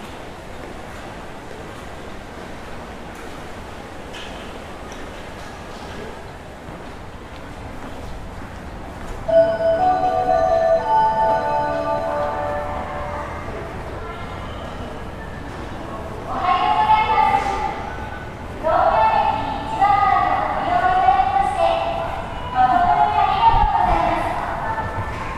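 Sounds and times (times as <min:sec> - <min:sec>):
low rumble and murmur in Tokyo: 0:00.0 - 0:25.3
clear ringing melodic tone: 0:09.3 - 0:13.8.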